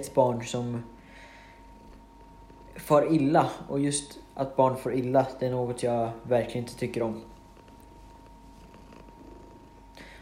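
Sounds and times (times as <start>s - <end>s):
speech: 0.0s - 1.0s, 2.8s - 7.3s
cat purring: 1.6s - 3.7s, 6.8s - 10.2s.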